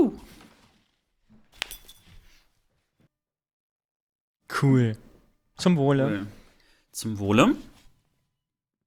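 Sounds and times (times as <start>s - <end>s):
bottle handling and rustling: 0.2s - 2.5s
speech: 4.6s - 6.4s, 7.0s - 7.7s.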